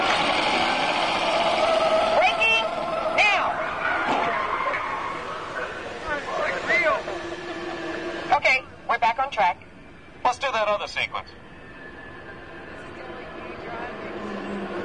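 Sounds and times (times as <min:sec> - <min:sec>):
car tires squealing with wheels locking under hard braking: 0:00.0 - 0:09.0, 0:11.4 - 0:14.8
steady car engine and road rumble: 0:00.0 - 0:14.8
voices in the car cabin: 0:03.2 - 0:14.8.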